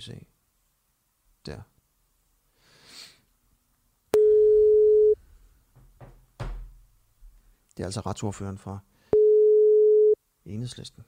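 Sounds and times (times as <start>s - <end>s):
speech: 0.0s - 0.3s, 1.4s - 1.7s, 7.8s - 8.9s, 10.4s - 11.0s
telephone ringing tone beep of an outgoing call: 4.2s - 5.2s, 9.2s - 10.2s.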